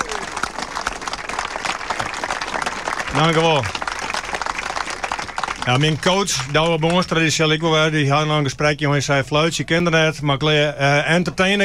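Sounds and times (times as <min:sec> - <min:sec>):
audience applause after a charity check presentation: 0:00.0 - 0:07.3
speech: 0:03.1 - 0:03.7, 0:05.6 - 0:11.6.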